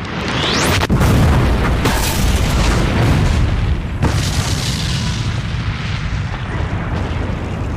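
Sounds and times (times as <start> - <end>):
rolling roar of fire and debris: 0.0 - 7.7
car explosion sound effect: 0.7 - 7.7.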